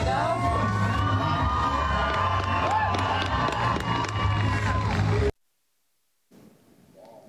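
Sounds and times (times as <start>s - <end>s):
rodeo crowd cheering and shouting at a bull riding event: 0.0s - 5.3s.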